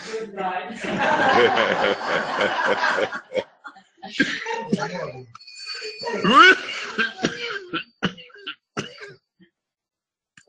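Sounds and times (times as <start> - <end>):
speech: 0.2 - 3.4
laughter: 0.8 - 9.1
person coughing harshly: 4.2 - 5.2, 5.9 - 9.1.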